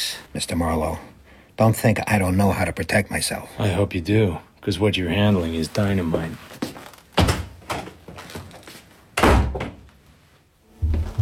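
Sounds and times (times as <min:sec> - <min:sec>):
speech: 0:00.0 - 0:06.7
door slamming: 0:09.2 - 0:09.8.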